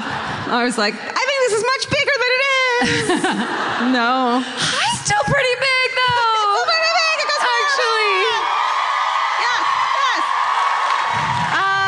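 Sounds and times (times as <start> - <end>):
laughter: 0.0 - 1.6, 2.6 - 5.5
speech: 0.5 - 5.6
large live crowd screaming and whooping: 6.3 - 11.8.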